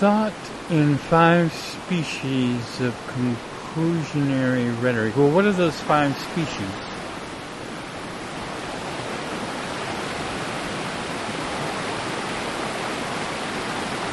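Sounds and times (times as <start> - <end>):
speech: 0.0 - 6.9
mountain river flowing: 0.0 - 14.1.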